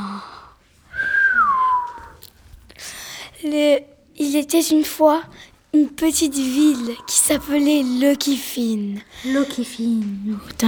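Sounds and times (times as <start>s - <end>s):
soft breathy noises: 0.0s - 4.1s, 5.1s - 10.6s
person whistling a sustained downward-sliding note: 0.9s - 2.2s
speech: 3.4s - 10.6s.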